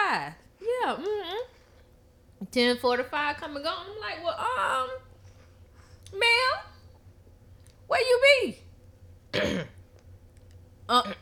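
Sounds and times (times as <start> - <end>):
faint low hum: 0.0 - 11.2
speech: 0.1 - 1.2, 2.4 - 5.1, 6.1 - 6.7, 7.9 - 8.6, 9.3 - 9.7, 10.9 - 11.2
person clearing throat: 9.3 - 9.8.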